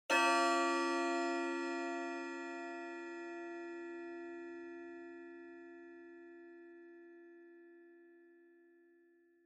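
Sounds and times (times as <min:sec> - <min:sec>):
low pendulum clock chime: 0:00.1 - 0:05.0.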